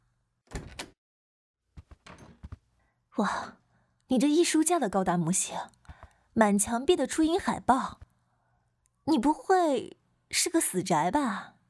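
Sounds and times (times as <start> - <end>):
bedroom door knocking and creaking as it swings: 0.5 - 1.0, 2.0 - 2.6
bedroom door latch rattling: 0.5 - 1.0
speech: 3.2 - 5.8, 6.4 - 8.0, 9.1 - 11.6.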